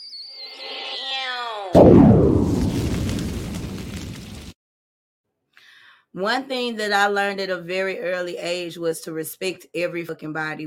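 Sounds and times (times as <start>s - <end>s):
descending bomb whistle: 0.0s - 0.9s
bomb explosion blast rumbling: 1.8s - 4.6s
speech: 6.2s - 10.6s.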